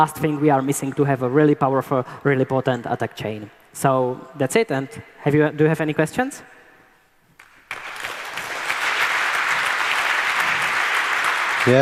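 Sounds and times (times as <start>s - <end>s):
speech: 0.0s - 6.5s, 11.6s - 11.8s
audience applause: 7.4s - 11.8s.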